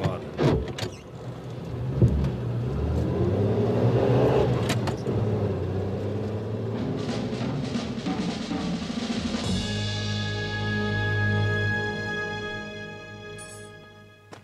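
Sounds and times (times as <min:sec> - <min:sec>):
car engine humming as the car drives off: 0:00.0 - 0:13.7
faint creak: 0:00.8 - 0:01.2.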